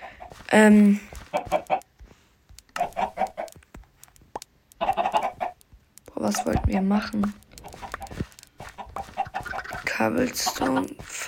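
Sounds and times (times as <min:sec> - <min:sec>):
video game chickens clucking: 0:00.0 - 0:00.5, 0:01.1 - 0:02.0, 0:02.7 - 0:03.7, 0:04.7 - 0:11.2
speech: 0:00.5 - 0:01.6, 0:06.3 - 0:07.5, 0:10.0 - 0:11.2.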